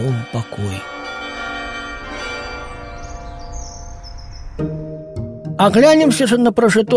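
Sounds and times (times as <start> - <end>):
church bells ringing: 0.0 - 5.1
speech: 0.1 - 1.0, 5.6 - 6.9
faint bird chirps: 2.7 - 4.9.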